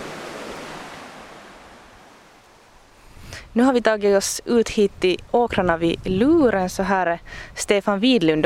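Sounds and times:
rushing water of river rapids: 0.0s - 2.8s
speech: 3.4s - 8.4s.

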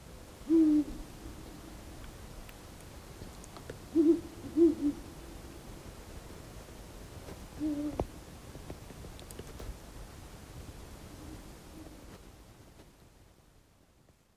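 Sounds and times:
quiet outdoor hiss: 0.0s - 14.3s
Ural owls hooting: 0.4s - 1.0s, 3.9s - 5.0s, 7.6s - 8.0s.

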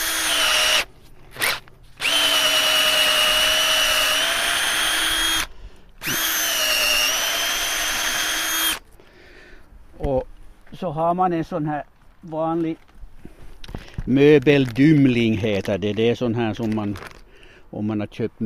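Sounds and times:
power drill boring a hole into the wood of a tree: 0.0s - 8.8s
speech: 10.9s - 12.9s, 14.1s - 17.1s, 17.7s - 18.4s.

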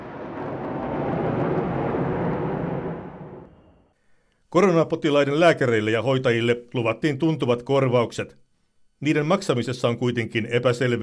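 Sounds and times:
fighter jets roaring overhead: 0.0s - 3.9s
speech: 4.5s - 8.4s, 9.0s - 11.0s.

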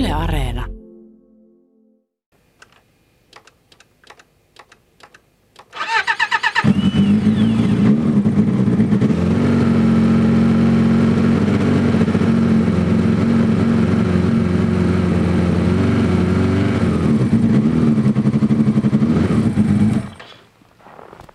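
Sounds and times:
speech: 0.1s - 0.7s
sharp clicks: 2.6s - 5.8s
snowmobile engine starting and revving: 6.5s - 20.2s.

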